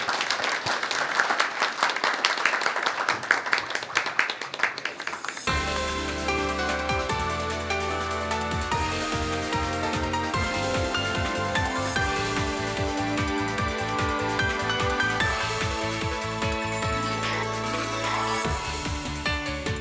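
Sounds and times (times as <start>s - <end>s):
audience applauding at an investor-relations seminar: 0.0s - 6.6s, 7.2s - 19.1s
upbeat music: 5.4s - 19.7s.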